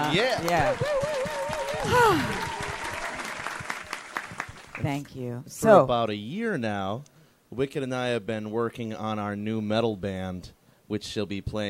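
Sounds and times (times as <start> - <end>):
audience clapping after a music performance: 0.0 - 5.1
speech: 0.1 - 1.0, 1.8 - 2.6, 4.8 - 11.6
person whooping: 0.6 - 3.3.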